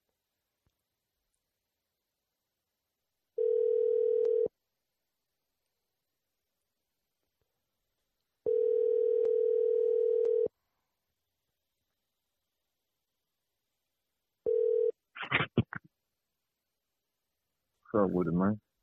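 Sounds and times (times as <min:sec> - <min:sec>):
person answering the phone: 0:03.4 - 0:04.5, 0:08.5 - 0:10.5, 0:14.5 - 0:15.0
telephone ringback tone: 0:03.4 - 0:04.5, 0:08.5 - 0:10.5, 0:14.5 - 0:14.9
speech: 0:17.9 - 0:18.7.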